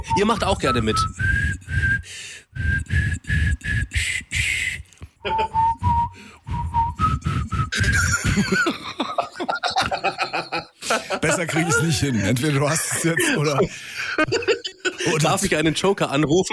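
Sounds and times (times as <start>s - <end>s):
speech: 0.0s - 1.4s, 11.2s - 16.5s
person whistling a simple children's tune: 0.0s - 8.6s
person chuckling: 5.2s - 5.8s, 7.5s - 15.3s.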